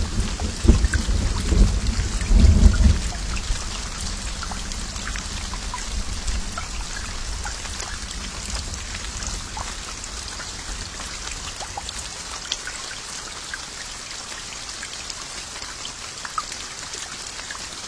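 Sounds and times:
low rumble of thunder: 0:00.0 - 0:11.6
steady dense rain hissing: 0:00.0 - 0:17.8.

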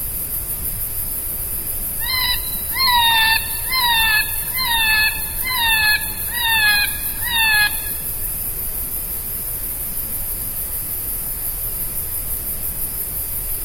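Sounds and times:
dense steady hiss of insects buzzing in a jungle in Massachusetts USA: 0:00.0 - 0:13.6
bird whistling bright descending notes in a jungle: 0:02.0 - 0:08.0.

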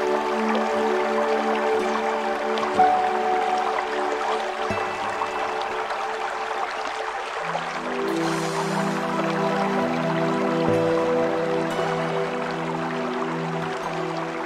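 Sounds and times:
relaxing music with sustained low notes: 0:00.0 - 0:14.4
river rushing: 0:00.0 - 0:14.4.

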